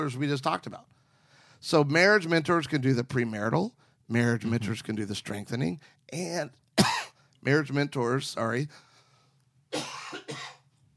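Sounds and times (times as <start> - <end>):
speech: 0.0 - 1.0, 1.6 - 8.9, 9.7 - 10.4
person giving a deliberate exaggerated cough: 6.8 - 7.2, 9.7 - 10.7.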